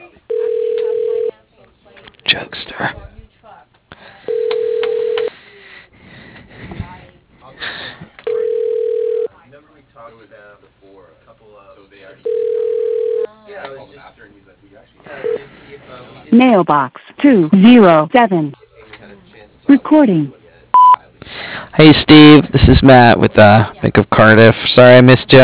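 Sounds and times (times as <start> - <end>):
telephone ringback tone on an outgoing call: 0.3 - 1.3, 4.3 - 5.3, 8.3 - 9.3, 12.2 - 13.3
speech: 16.4 - 18.6, 19.8 - 20.4, 21.8 - 25.4.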